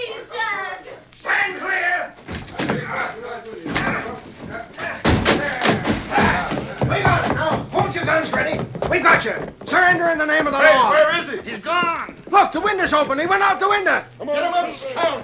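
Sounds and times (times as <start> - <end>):
voices: 0.0 - 15.2
scuffling: 2.2 - 14.5
door crashing open: 3.7 - 8.1
heavy pounding on a door being forced open: 3.8 - 13.5
speech: 12.6 - 15.2.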